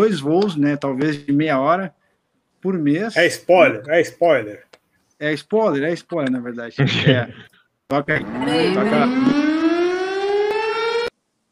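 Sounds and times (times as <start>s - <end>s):
speech: 0.0s - 2.0s, 2.6s - 9.4s
laughter: 6.8s - 9.4s
siren sound effect rising in pitch with rich harmonics: 8.1s - 11.1s.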